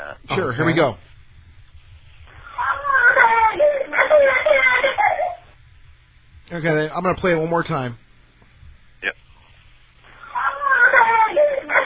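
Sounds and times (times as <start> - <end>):
speech: 0.3 - 1.1, 6.5 - 8.0
baby boy crying: 2.6 - 5.5, 10.2 - 11.8.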